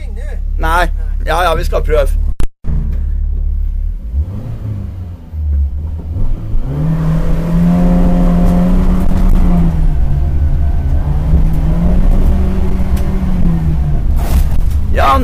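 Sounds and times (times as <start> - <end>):
car engine revving inside a car driving fast on a track: 0.0 - 15.2
speech: 0.6 - 2.3.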